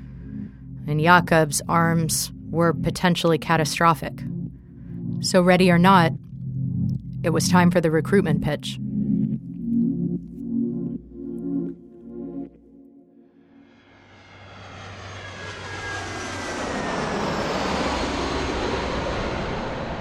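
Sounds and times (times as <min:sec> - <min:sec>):
airplane engine roar: 0:00.0 - 0:12.6, 0:13.4 - 0:19.9
low rhythmic music: 0:00.0 - 0:13.3
speech: 0:00.9 - 0:04.4, 0:05.2 - 0:06.2, 0:07.2 - 0:08.8.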